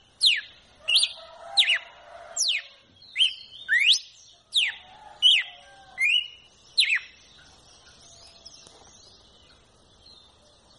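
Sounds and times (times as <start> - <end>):
red-cowled cardinal singing two clear notes: 0.2 - 8.8.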